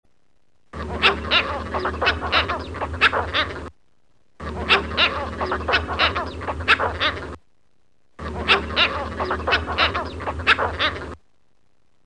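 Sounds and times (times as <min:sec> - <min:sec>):
squacco heron: 0:00.8 - 0:03.7, 0:04.4 - 0:07.4, 0:08.2 - 0:11.2.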